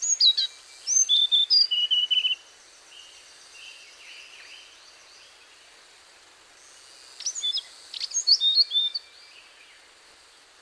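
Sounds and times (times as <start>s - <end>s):
Hainan blue flycatcher Cyornis hainanus whistling and trilling: 0.0s - 2.4s, 6.6s - 9.2s
faint steady hiss: 0.0s - 10.5s.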